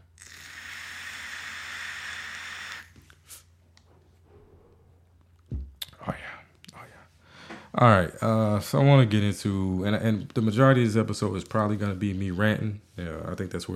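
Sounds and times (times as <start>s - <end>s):
quiet breaths: 6.0s - 7.8s
breathy inhale from a vape: 7.2s - 7.7s
speech: 7.8s - 13.7s.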